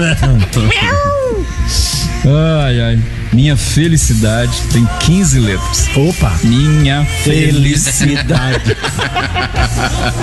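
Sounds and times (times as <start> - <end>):
speech: 0.0 - 10.2
cat yowling after its tail is stepped on: 0.7 - 1.4
laughter: 7.7 - 10.2.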